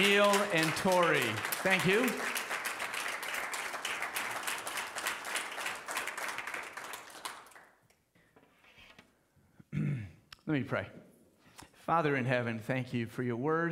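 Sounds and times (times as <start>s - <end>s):
speech: 0.0s - 2.4s, 10.5s - 11.0s, 11.9s - 13.7s
church audience applauding: 0.0s - 7.8s.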